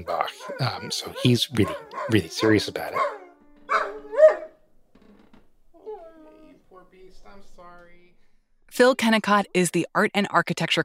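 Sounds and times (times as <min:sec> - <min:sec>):
speech: 0:00.0 - 0:03.2, 0:08.8 - 0:10.8
dog barking: 0:00.3 - 0:04.6
dog whining: 0:00.3 - 0:04.6, 0:05.8 - 0:06.5.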